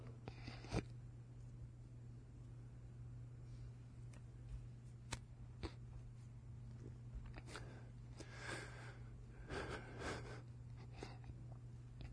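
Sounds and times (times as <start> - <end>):
steady low hum: 0.0 - 12.1
pastor crying with sniffles and gasping breaths: 9.5 - 11.2.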